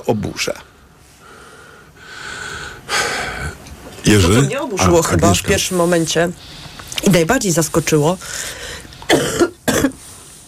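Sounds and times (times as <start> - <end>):
speech: 0.0 - 0.7, 4.0 - 9.2
person coughing harshly: 9.1 - 10.0.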